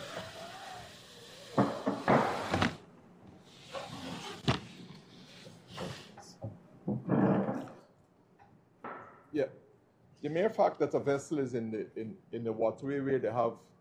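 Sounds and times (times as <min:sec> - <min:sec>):
chair being dragged into place: 0:01.6 - 0:02.8, 0:03.7 - 0:04.9, 0:07.0 - 0:07.8
speech: 0:10.2 - 0:13.7.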